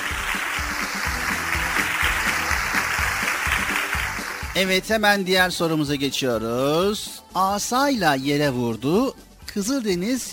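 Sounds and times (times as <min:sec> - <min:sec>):
crowd applauding: 0:00.0 - 0:04.6
speech: 0:04.6 - 0:10.3.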